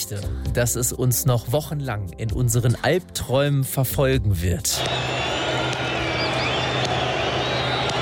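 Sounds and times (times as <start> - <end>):
speech: 0.1 - 5.3
dense roar of a large stadium crowd: 4.8 - 8.0
goalkeeper's slow monotonous hand clapping: 4.8 - 8.0.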